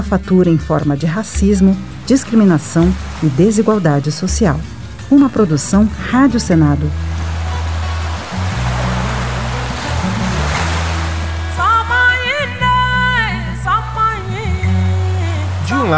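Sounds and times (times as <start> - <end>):
speech: 0.0 - 7.1
Atlantic Ocean waves washing and hissing: 0.0 - 15.9
deep sustained musical drone: 0.0 - 15.9.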